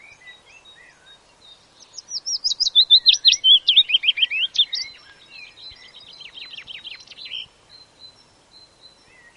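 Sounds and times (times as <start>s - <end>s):
willow warbler giving a sweet cascading whistled phrase: 0.0s - 9.3s.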